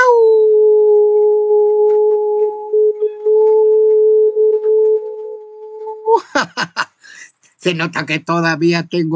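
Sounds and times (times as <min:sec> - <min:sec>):
person imitating a long howl: 0:00.0 - 0:06.3
laughter: 0:06.1 - 0:07.2
speech: 0:07.6 - 0:09.1.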